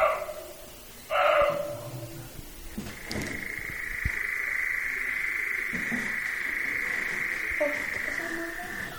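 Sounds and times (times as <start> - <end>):
harsh animal calls: 1.1 - 8.9
European nightjar churring: 3.4 - 8.9.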